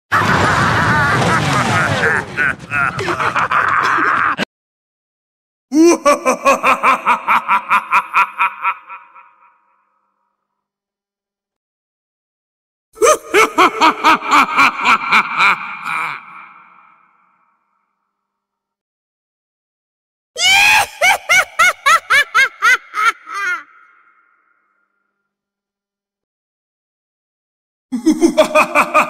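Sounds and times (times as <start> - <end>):
evil creepy horror laugh: 0.1 - 4.5, 5.7 - 10.0, 13.0 - 17.6, 20.4 - 24.8, 27.9 - 29.0.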